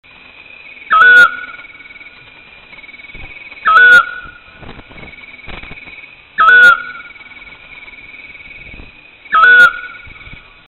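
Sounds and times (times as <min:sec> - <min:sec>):
Otus scops calling: 0:00.8 - 0:02.1, 0:02.8 - 0:04.6, 0:06.4 - 0:10.6.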